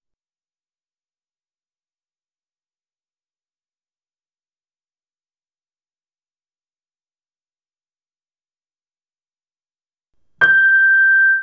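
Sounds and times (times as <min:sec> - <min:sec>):
piano note G6: 0:10.4 - 0:11.4
sinusoid tone: 0:10.4 - 0:11.4.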